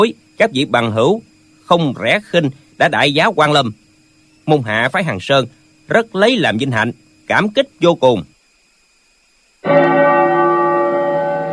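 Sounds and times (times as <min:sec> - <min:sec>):
speech: 0:00.0 - 0:03.8, 0:04.5 - 0:08.3, 0:09.6 - 0:09.9
temple bell ringing at a Buddhist nunnery ceremony: 0:09.6 - 0:11.5.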